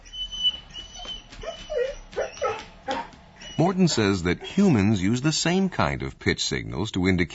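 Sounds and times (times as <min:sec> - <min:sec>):
dog whining and whimpering: 0:00.0 - 0:04.6
speech: 0:03.6 - 0:07.3.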